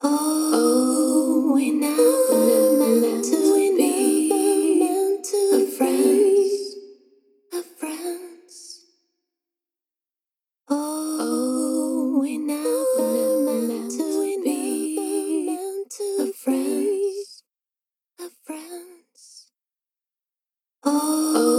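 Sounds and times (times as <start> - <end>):
female vocal bus with scooped room: 0.0 - 6.9, 7.5 - 8.8, 10.7 - 17.4, 18.2 - 19.4, 20.8 - 21.5.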